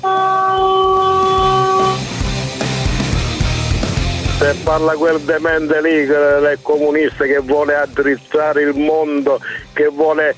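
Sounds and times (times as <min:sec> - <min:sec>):
truck air horn blaring: 0:00.0 - 0:02.2
rumbling vehicle engine: 0:00.0 - 0:05.7
speech: 0:04.5 - 0:10.3.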